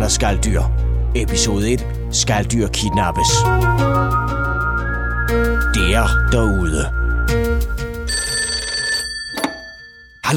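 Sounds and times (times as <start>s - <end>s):
speech: 0.1s - 4.5s, 5.3s - 7.8s
telephone bell ringing with a bright metallic jangle: 7.3s - 10.3s.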